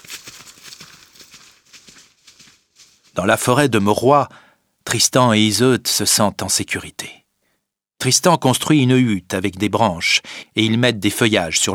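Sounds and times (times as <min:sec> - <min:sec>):
horse hooves galloping at speed: 0:00.0 - 0:03.5
speech: 0:03.2 - 0:07.2, 0:08.0 - 0:11.7.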